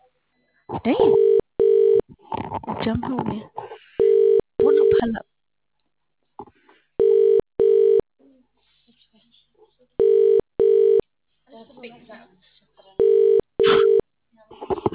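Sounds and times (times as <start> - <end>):
speech: 0.8 - 1.3, 2.5 - 3.6, 5.0 - 5.2
telephone ringback tone: 1.0 - 2.0, 4.0 - 5.1, 7.0 - 8.0, 10.0 - 11.0, 13.0 - 14.0.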